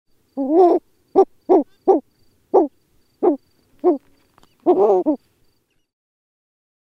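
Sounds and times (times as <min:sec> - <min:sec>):
Bulwer's petrel calling with low hoarse barking hoots: 0:00.4 - 0:05.2.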